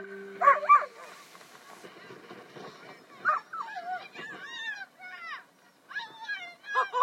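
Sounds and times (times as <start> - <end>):
dog barking sharply: 0.4 - 1.1.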